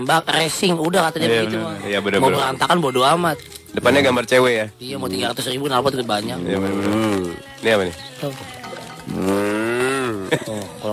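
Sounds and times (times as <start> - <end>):
speech: 0.0 - 9.5, 10.3 - 10.9
low vocal sound: 6.4 - 10.9
cow mooing: 9.1 - 10.2.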